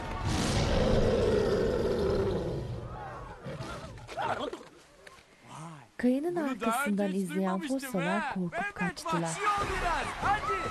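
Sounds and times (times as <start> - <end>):
lion roaring: 0.2 - 4.2
speech: 6.0 - 10.7.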